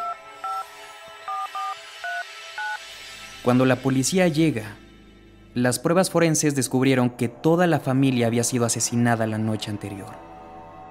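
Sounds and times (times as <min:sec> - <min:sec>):
cell phone touch-tone dialing beeps: 0:00.0 - 0:00.6, 0:01.3 - 0:02.8
speech: 0:03.4 - 0:04.8, 0:05.6 - 0:10.3.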